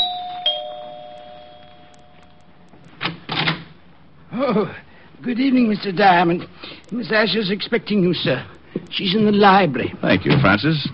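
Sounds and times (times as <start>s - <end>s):
apartment doorbell chiming: 0.0s - 2.6s
speech: 4.4s - 10.9s.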